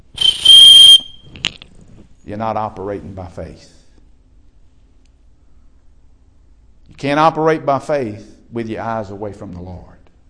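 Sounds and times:
whistle blast: 0.0 - 1.3
speech: 2.3 - 3.8, 7.0 - 10.0.

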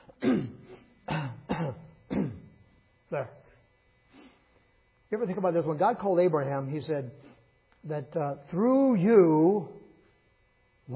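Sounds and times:
coughing from a preacher covering the microphone: 0.0 - 2.6
speech: 3.1 - 3.4, 5.1 - 9.8.

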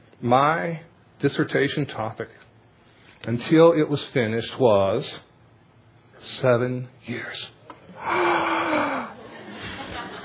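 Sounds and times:
speech: 0.2 - 2.5, 3.2 - 5.3, 6.2 - 8.9
surprised gasp: 7.9 - 9.2
laughter: 8.8 - 10.2.

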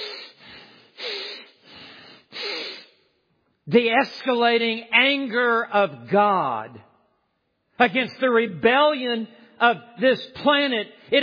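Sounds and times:
heavy snorting breaths through flared nostrils: 0.0 - 3.0
speech: 3.7 - 6.9, 7.8 - 11.2.

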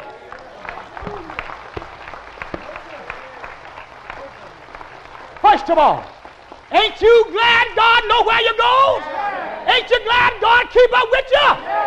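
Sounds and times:
congregation applauding: 0.0 - 7.8
speech: 5.6 - 11.7.

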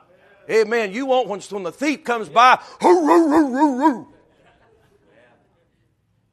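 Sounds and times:
speech: 0.5 - 4.1
person imitating a small poodle barking: 2.8 - 4.2
laughter: 2.8 - 5.9.

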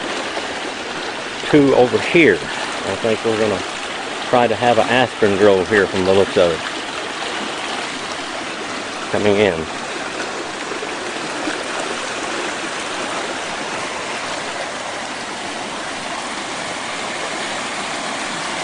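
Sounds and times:
water bubbling out of saturated ground: 0.0 - 18.6
speech: 1.5 - 6.7, 9.1 - 9.8.

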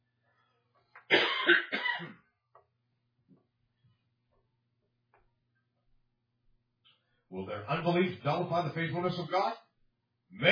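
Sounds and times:
person coughing harshly: 1.1 - 2.2
speech: 7.6 - 9.6.

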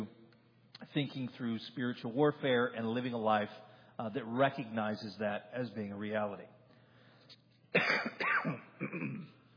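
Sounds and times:
speech: 1.0 - 6.6, 7.7 - 9.4
rough phlegmy coughs: 7.7 - 9.4
harsh rasping throat clearing: 7.8 - 9.5.

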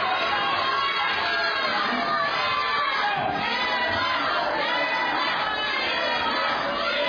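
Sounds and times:
group of children cheering and shouting: 0.0 - 7.0.

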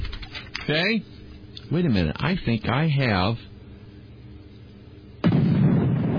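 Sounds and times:
speech: 0.7 - 3.5
explosion sound effect: 5.2 - 6.1.

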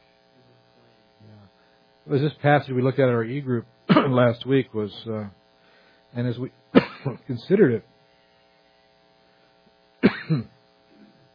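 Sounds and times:
speech: 2.1 - 5.4, 6.1 - 7.9, 10.3 - 10.6
throat clearing from a dry throat: 3.9 - 4.2, 6.8 - 7.2, 10.0 - 11.2.

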